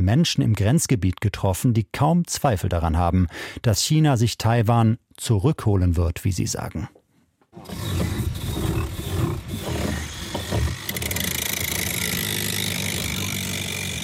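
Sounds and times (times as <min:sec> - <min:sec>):
speech: 0:00.0 - 0:07.0
small boat hull being sanded with a power tool: 0:07.6 - 0:14.0.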